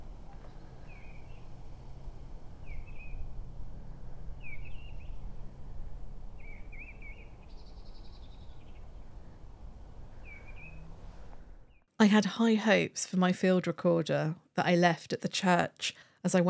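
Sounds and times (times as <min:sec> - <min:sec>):
bird singing at a church with a graveyard: 0:00.0 - 0:03.3, 0:04.3 - 0:05.3, 0:06.4 - 0:11.0
wind rumble on a windy day: 0:00.0 - 0:11.8
speech: 0:12.0 - 0:16.4.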